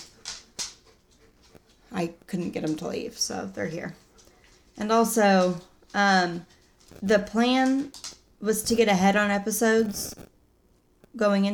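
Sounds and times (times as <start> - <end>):
dog claws clicking on hard floor: 0.0 - 1.9, 4.0 - 8.9
speech: 1.9 - 4.0, 4.8 - 10.3, 11.2 - 11.5.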